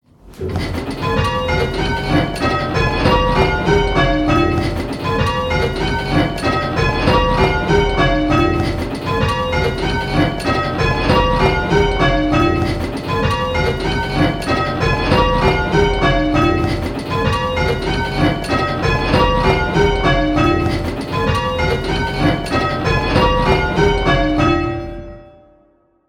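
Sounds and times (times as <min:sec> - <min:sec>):
six bells striking call changes: 0:00.9 - 0:25.8.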